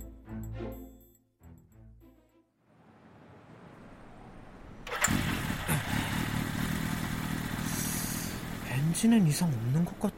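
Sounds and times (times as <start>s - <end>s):
motorcycle engine sputtering and revving: 4.1s - 10.1s
speech: 9.0s - 10.1s.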